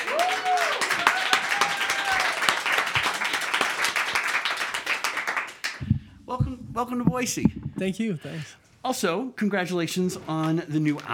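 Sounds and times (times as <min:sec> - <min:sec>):
room full of people clapping steadily: 0:00.0 - 0:07.5
speech: 0:06.4 - 0:11.1.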